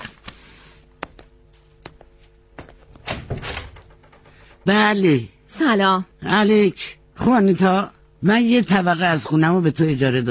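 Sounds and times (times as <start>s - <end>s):
door scraping and rattling as it swings open: 2.9s - 4.8s
door latch clicks and knocks: 3.0s - 4.4s
speech: 4.7s - 10.2s.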